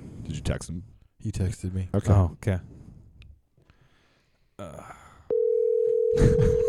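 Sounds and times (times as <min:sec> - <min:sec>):
speech: 0:00.3 - 0:02.8
telephone dial tone while placing a call: 0:05.3 - 0:06.2.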